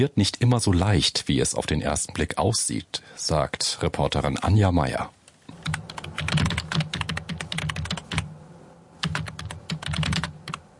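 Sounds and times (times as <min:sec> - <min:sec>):
speech: 0:00.0 - 0:05.8
typing on keyboards in a Berlin office: 0:05.5 - 0:08.3, 0:09.0 - 0:10.7.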